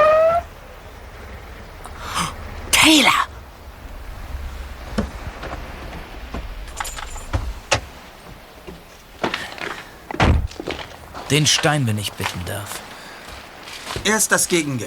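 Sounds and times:
car idling with a low steady rumble: 0:00.0 - 0:13.8
heavy car door thunk: 0:04.8 - 0:10.8
sharp clicks and knocks: 0:04.9 - 0:11.0
speech: 0:11.3 - 0:12.9, 0:14.0 - 0:14.8.

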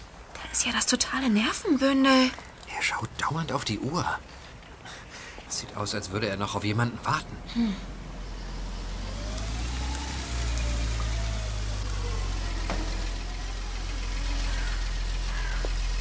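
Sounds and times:
speech: 0:00.6 - 0:04.4, 0:05.5 - 0:07.9
car engine idling: 0:05.8 - 0:16.0.

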